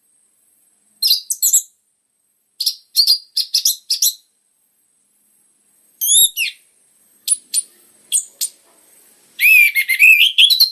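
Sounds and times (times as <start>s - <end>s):
orange-headed thrush singing: 1.0s - 1.8s, 2.6s - 4.3s, 6.0s - 6.6s, 7.2s - 8.6s, 9.4s - 10.7s.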